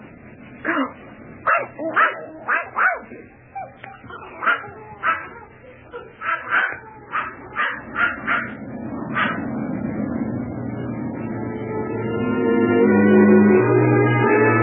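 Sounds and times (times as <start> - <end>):
low rumble: 0.0 - 14.5
speech: 0.6 - 1.0
small wet dog barking: 0.6 - 9.5.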